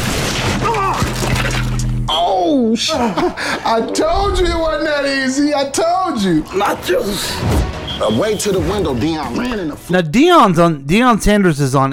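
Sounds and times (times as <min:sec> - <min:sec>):
snack table smashing and shattering: 0:00.0 - 0:02.0
speech: 0:02.8 - 0:11.9.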